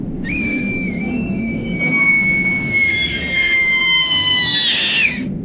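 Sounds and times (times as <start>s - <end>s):
airplane crashing, heard from inside: 0.2s - 5.3s.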